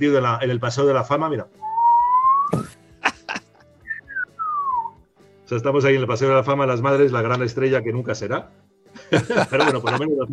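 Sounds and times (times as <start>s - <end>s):
speech: 0.0s - 1.7s, 2.5s - 2.8s, 5.5s - 10.3s
person whistling a short three-note phrase: 1.6s - 2.8s, 3.8s - 5.0s
laughter: 2.6s - 3.7s, 9.0s - 10.3s.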